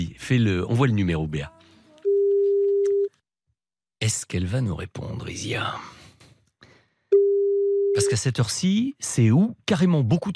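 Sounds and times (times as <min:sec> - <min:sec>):
speech: 0:00.3 - 0:01.6, 0:04.1 - 0:06.0, 0:08.0 - 0:10.3
telephone call ringing tone: 0:02.0 - 0:03.1.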